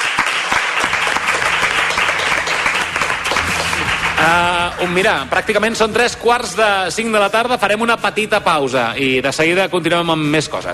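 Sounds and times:
crowd applause: 0.0s - 5.3s
speech: 4.2s - 10.7s.

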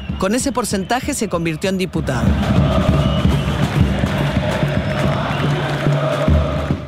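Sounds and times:
large crowd of mostly young people cheering at a packed arena on election night: 0.0s - 6.8s
speech: 0.2s - 3.1s
scattered shouts from crowd at a packed arena: 2.3s - 6.7s.

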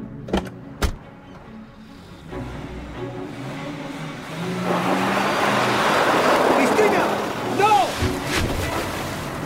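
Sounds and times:
car rolling forward and plunging into water: 4.3s - 9.4s.

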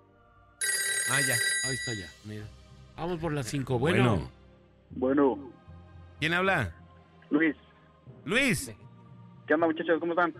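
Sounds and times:
telephone bell ringing: 0.6s - 2.3s
speech: 1.1s - 5.6s, 6.2s - 7.6s, 8.2s - 8.8s, 9.5s - 10.3s.

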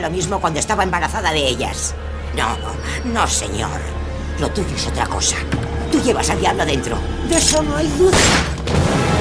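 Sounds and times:
speech: 0.0s - 9.0s
sharp loud gunshot crack: 8.1s - 9.1s.

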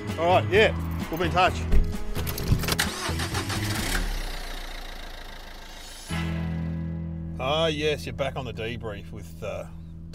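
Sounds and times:
speech: 0.2s - 1.8s, 7.4s - 10.1s
car engine cranking with rapid clicking in a car park: 0.8s - 6.8s
car engine running with a steady rumble in a car park: 0.9s - 10.1s.

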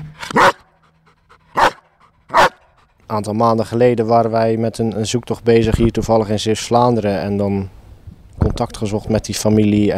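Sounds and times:
dog barking: 0.3s - 0.7s, 1.5s - 2.7s
dog panting: 0.3s - 3.1s
speech: 3.1s - 7.8s, 8.6s - 9.9s.

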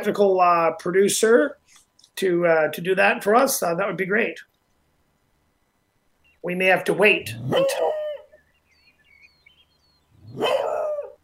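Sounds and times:
speech: 0.0s - 4.5s, 6.4s - 8.0s, 10.4s - 10.7s
dog barking: 7.3s - 8.3s, 10.2s - 11.2s.

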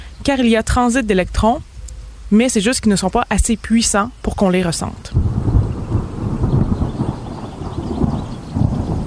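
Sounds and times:
soft hiss of rain: 0.0s - 9.0s
speech: 0.2s - 1.7s, 2.3s - 5.3s
deep rolling thunder from a lightning strike: 5.1s - 9.0s.

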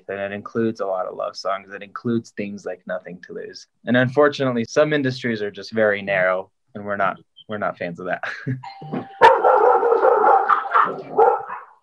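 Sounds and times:
speech: 0.1s - 9.2s
doorbell ringing: 8.6s - 10.3s
dog barking and yelping at the doorbell: 9.2s - 11.8s.

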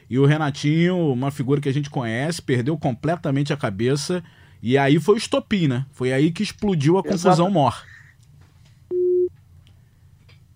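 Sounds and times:
low hum: 0.0s - 10.5s
speech: 0.1s - 8.0s
telephone busy tone after a dropped call: 8.9s - 9.3s.

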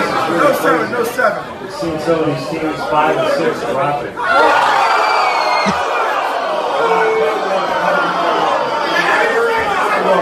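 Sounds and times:
noisy crowd chattering: 0.0s - 10.1s
crowd loud cheering: 4.2s - 10.1s.

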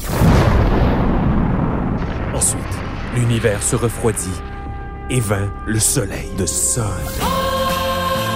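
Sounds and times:
big bang explosion sound effect with sustained low rumble: 0.0s - 8.2s
speech: 3.2s - 4.5s, 5.1s - 7.5s.

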